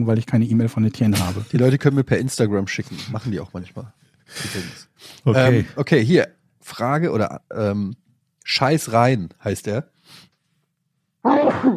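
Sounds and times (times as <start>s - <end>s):
speech: 0.0s - 10.3s, 11.2s - 11.7s
breathy intake before a sneeze: 4.3s - 5.2s
loud sneeze: 11.3s - 11.7s.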